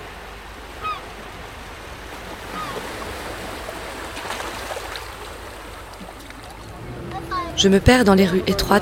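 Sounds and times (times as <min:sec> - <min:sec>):
surf and lapping water at the harbour below the Scala ramparts of Mogador: 0:00.0 - 0:08.7
black-headed gull calling at the harbour: 0:00.8 - 0:01.1, 0:02.5 - 0:02.9
speech: 0:07.6 - 0:08.7.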